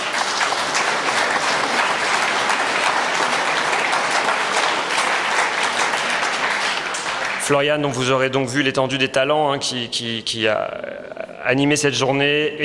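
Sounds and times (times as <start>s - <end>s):
audience applause: 0.0s - 8.0s
speech: 7.5s - 12.6s.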